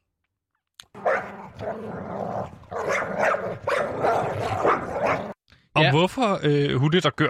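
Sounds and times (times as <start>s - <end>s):
dog barking and growling: 0.9s - 5.4s
speech: 1.6s - 7.2s.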